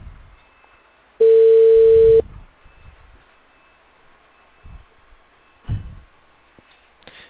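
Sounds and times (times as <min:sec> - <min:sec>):
ringback tone on a telephone call: 0:01.2 - 0:02.2.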